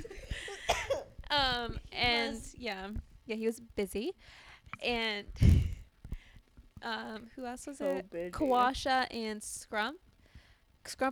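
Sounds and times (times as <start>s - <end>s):
person coughing: 0.5s - 1.1s
speech: 1.3s - 5.7s, 6.8s - 10.0s, 10.8s - 11.0s.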